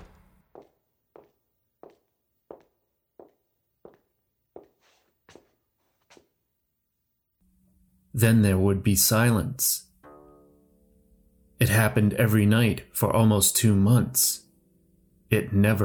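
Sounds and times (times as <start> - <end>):
footsteps at a steady walking pace: 0.0 - 6.4
speech: 8.2 - 9.9, 11.7 - 14.5, 15.3 - 15.8.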